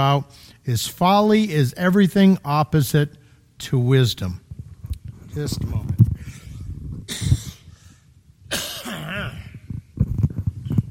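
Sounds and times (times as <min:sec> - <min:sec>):
speech: 0:00.0 - 0:04.4, 0:05.3 - 0:05.9
person coughing harshly with raspy strained throat: 0:08.5 - 0:09.6.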